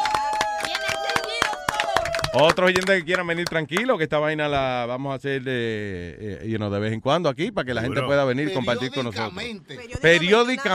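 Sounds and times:
small audience clapping: 0.0s - 3.9s
speech: 2.3s - 10.7s.

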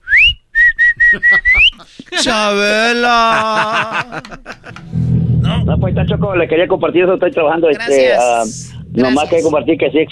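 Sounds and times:
person whistling a short tune: 0.0s - 1.8s
laughter: 1.0s - 5.0s
speech: 1.2s - 4.6s, 5.6s - 10.1s.

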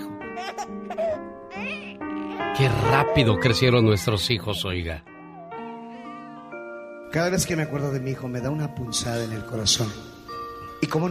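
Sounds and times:
recorded newborn baby crying in high-pitched wails: 0.0s - 3.5s
speech: 2.6s - 5.1s, 7.1s - 10.2s, 10.8s - 11.1s.

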